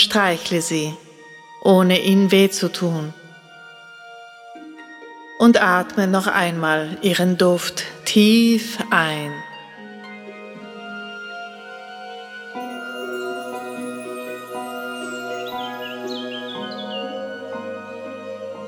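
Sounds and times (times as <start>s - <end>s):
speech: 0.0s - 1.0s, 1.6s - 3.2s, 5.4s - 9.5s
soft sustained musical drone: 0.0s - 18.6s
birds chirping and twittering: 12.6s - 18.6s.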